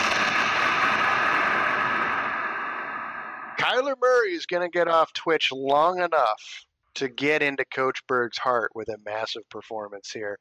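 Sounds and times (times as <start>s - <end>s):
loud explosion sound effect roaring: 0.0s - 3.8s
speech: 3.8s - 10.3s.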